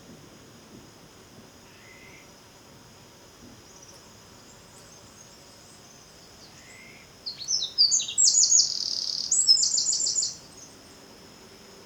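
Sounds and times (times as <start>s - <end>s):
steady faint hiss: 0.0s - 11.8s
Eurasian wren Troglodytes troglodytes song: 6.4s - 10.8s.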